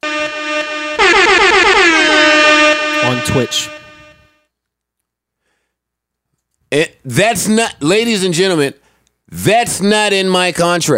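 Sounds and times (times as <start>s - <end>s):
loud blaring air horn: 0.0s - 4.4s
speech: 3.2s - 3.8s, 6.7s - 10.9s.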